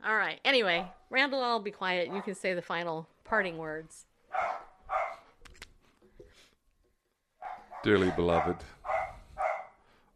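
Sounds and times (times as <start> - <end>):
speech: 0.0 - 4.5, 7.8 - 8.8
dogs barking: 2.1 - 2.4, 4.3 - 5.3, 7.4 - 9.8.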